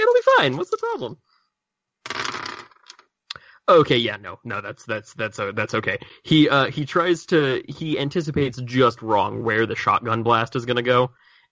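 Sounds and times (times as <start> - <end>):
speech: 0.4 - 1.3, 3.7 - 11.5
dice rattling across a hard tabletop: 2.1 - 3.1.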